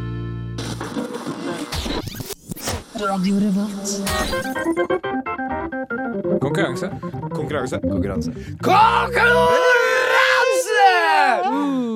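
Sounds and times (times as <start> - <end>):
speech: 3.0 - 10.0
person screaming a vocal jingle: 8.6 - 11.9.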